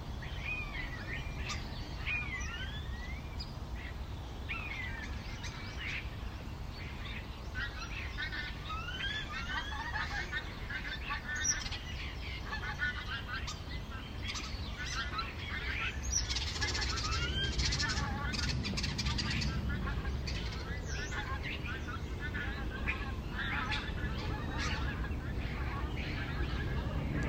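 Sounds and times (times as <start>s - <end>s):
starlings chattering and chirping: 0.0s - 27.2s
steady low rumble of traffic: 0.0s - 27.2s.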